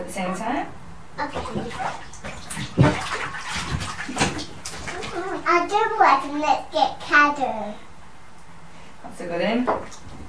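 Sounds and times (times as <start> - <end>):
speech: 0.1 - 2.0, 5.7 - 7.8, 9.2 - 10.0
child splashing water in a bathtub: 1.2 - 7.1, 9.7 - 10.2.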